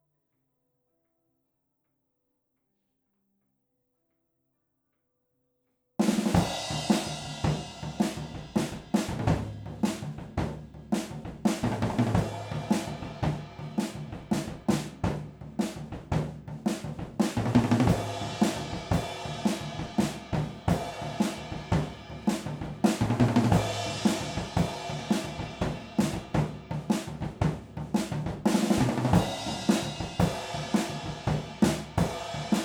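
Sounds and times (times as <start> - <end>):
drums recorded with Rode stereo overhead microphones: 6.0 - 32.6.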